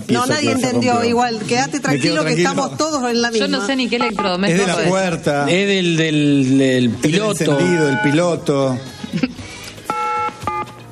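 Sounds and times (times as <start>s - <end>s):
speech: 0.1s - 9.3s
touch-tone beeps of a telephone number being dialed: 3.9s - 4.7s, 7.5s - 8.3s, 9.8s - 10.8s.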